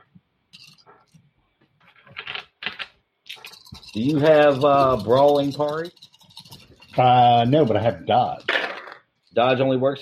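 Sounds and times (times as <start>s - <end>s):
plastic dice scooped up, shaken and rolled: 2.1s - 9.4s
speech: 3.9s - 6.0s, 7.0s - 8.5s, 9.4s - 10.0s.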